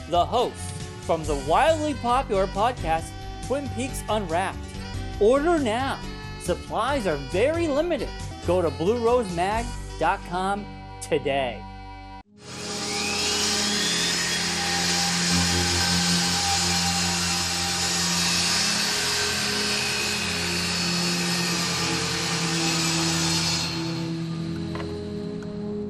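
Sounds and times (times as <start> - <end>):
speech: 0.1 - 11.7
power saw sawing wood: 12.4 - 25.2.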